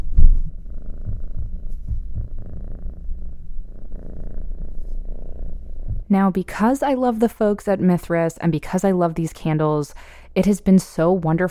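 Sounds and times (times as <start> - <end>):
cat purring: 0.0 - 6.1
speech: 6.1 - 11.5.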